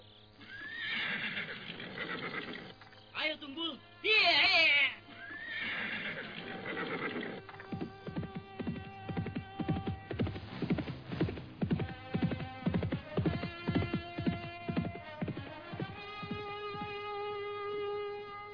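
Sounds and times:
horse whinnying with a shrill wavering neigh: 0:00.4 - 0:02.7, 0:05.1 - 0:07.6
speech: 0:03.3 - 0:04.7
horse hooves clip-clopping at a quick pace: 0:06.1 - 0:18.3.

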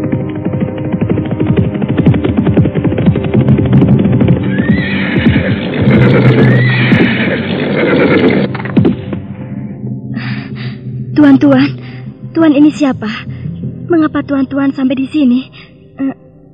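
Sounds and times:
dense clatter of hooves coming to a halt: 0:00.1 - 0:09.0
many horses neighing: 0:04.5 - 0:08.5
speech: 0:11.4 - 0:13.3, 0:13.9 - 0:16.1.

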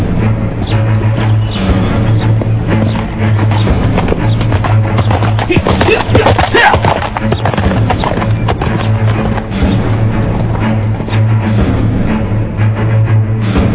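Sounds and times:
low sustained drone: 0:00.0 - 0:05.5, 0:07.5 - 0:13.7
horse hooves galloping: 0:00.6 - 0:11.3.

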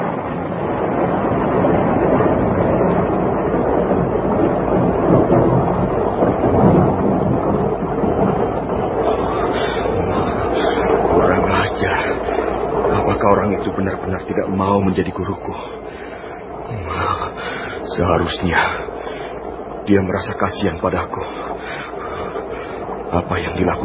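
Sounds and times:
heavy continuous rain: 0:00.0 - 0:23.8
strong wind roaring: 0:00.0 - 0:23.8
speech: 0:18.3 - 0:18.8, 0:19.9 - 0:21.8, 0:23.1 - 0:23.8.

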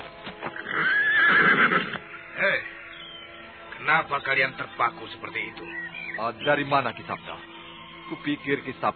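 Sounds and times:
horse neighing as a rider approaches on horseback: 0:00.5 - 0:02.7
speech: 0:04.1 - 0:07.5, 0:08.1 - 0:08.9.

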